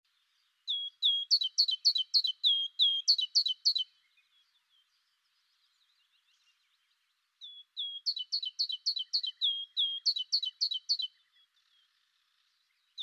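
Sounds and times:
great tit Parus major giving high notes: 0.7s - 3.9s, 7.4s - 11.5s.

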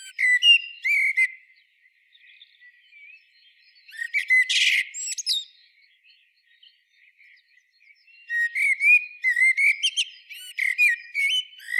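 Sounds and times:
common blackbird whistling and twittering: 0.0s - 1.3s, 2.5s - 5.6s, 7.9s - 11.7s.

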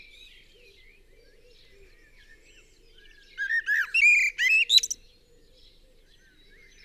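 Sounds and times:
common blackbird Turdus merula singing: 3.4s - 5.0s.

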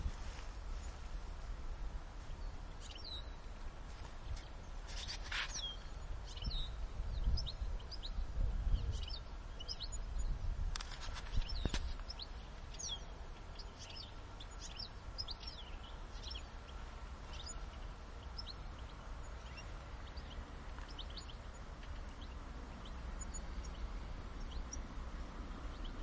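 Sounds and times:
low rumbling background noise: 0.0s - 26.0s
European goldfinch Carduelis carduelis twittering calls: 2.4s - 3.4s, 4.3s - 8.2s, 8.8s - 10.3s, 11.0s - 24.9s, 25.7s - 26.0s.

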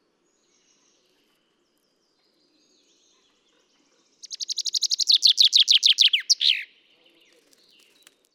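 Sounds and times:
common chaffinch Fringilla coelebs singing: 4.2s - 6.9s.

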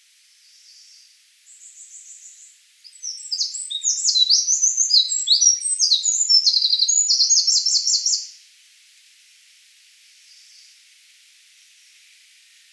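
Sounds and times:
Eurasian wren Troglodytes troglodytes singing a shrill rapid-fire song: 1.6s - 8.3s.

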